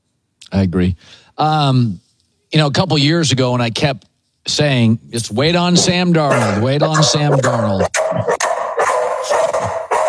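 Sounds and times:
speech: 0:00.5 - 0:08.4
dog barking at someone at the door: 0:05.8 - 0:10.0.

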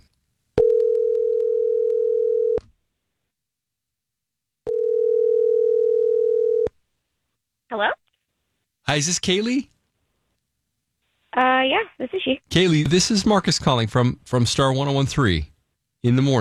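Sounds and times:
telephone ring tones over a phone line: 0:00.6 - 0:02.6, 0:04.7 - 0:06.7
woman answering phone: 0:07.7 - 0:08.0, 0:11.4 - 0:12.4
speech: 0:09.0 - 0:09.7, 0:11.6 - 0:16.3.

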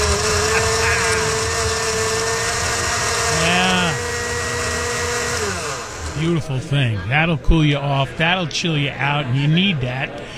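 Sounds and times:
laughter: 0:00.0 - 0:04.2, 0:06.1 - 0:10.3
blender crushing frozen vodka lemonade: 0:00.0 - 0:06.2
speech: 0:06.2 - 0:10.3.

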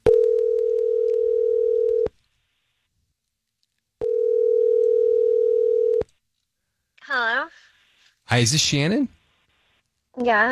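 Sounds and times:
outgoing call telephone line tone: 0:00.1 - 0:02.1, 0:04.0 - 0:06.0
speech: 0:08.4 - 0:09.2, 0:10.2 - 0:10.4.

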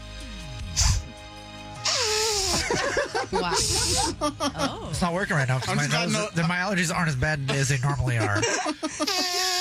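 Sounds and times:
short puff of breath: 0:00.8 - 0:01.2, 0:01.8 - 0:02.8
laughter: 0:02.4 - 0:06.5, 0:07.4 - 0:09.6
speech: 0:02.7 - 0:09.5.

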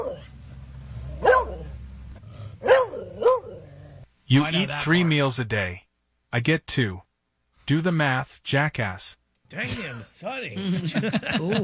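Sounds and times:
dog barking: 0:00.0 - 0:00.3, 0:01.1 - 0:01.8, 0:02.6 - 0:03.7
low hum: 0:00.0 - 0:11.6
speech: 0:04.3 - 0:07.1, 0:07.7 - 0:11.6
laughter: 0:09.5 - 0:11.6.

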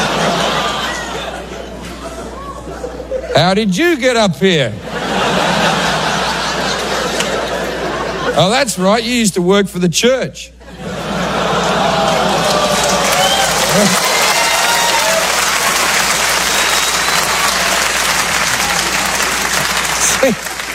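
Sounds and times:
laughter: 0:00.0 - 0:03.6, 0:04.8 - 0:08.9, 0:10.6 - 0:14.5
speech: 0:03.4 - 0:04.9, 0:08.4 - 0:10.6, 0:13.8 - 0:14.0
large audience groaning collectively: 0:10.9 - 0:20.7.

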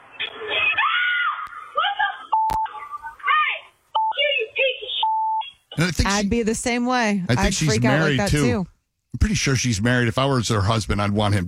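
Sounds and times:
woman screaming in shock: 0:00.5 - 0:02.2
short electronic telephone beeps: 0:02.4 - 0:02.8, 0:04.0 - 0:04.2, 0:05.0 - 0:05.6
speech: 0:05.8 - 0:11.4.

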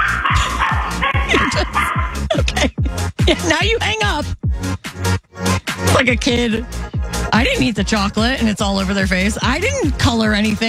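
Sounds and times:
dog barking in rapid loud yaps: 0:00.0 - 0:02.4
laughter: 0:00.0 - 0:04.2, 0:07.3 - 0:08.6
speech: 0:03.5 - 0:04.4, 0:06.0 - 0:10.6.

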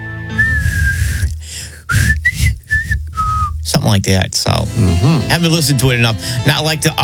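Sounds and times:
person whistling a short theme tune: 0:00.2 - 0:03.6
speech: 0:03.9 - 0:07.0.

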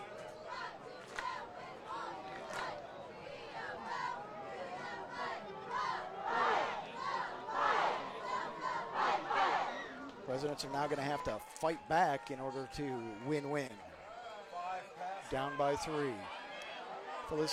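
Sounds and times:
stadium crowd noise: 0:00.0 - 0:17.5
cheerleaders chanting to rally the crowd: 0:00.1 - 0:10.0
speech: 0:10.4 - 0:13.9, 0:15.3 - 0:16.4, 0:17.3 - 0:17.5.

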